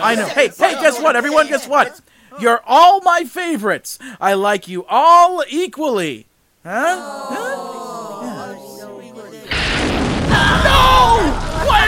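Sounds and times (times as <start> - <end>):
speech: 0.0 - 7.7
explosion in an animated battle scene: 9.5 - 11.8.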